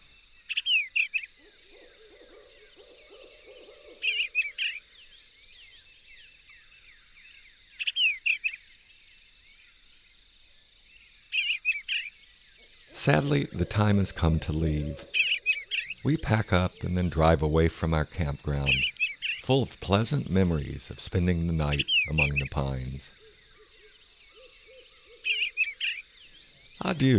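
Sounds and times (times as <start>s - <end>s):
eastern bluebird chirping in a campground among pines: 0.0s - 27.1s
barred owl hooting in the distance near Sopchoppy: 0.5s - 4.8s, 11.4s - 17.3s, 18.5s - 19.4s, 21.7s - 26.0s
speech: 13.0s - 15.2s, 16.0s - 23.2s, 26.8s - 27.1s.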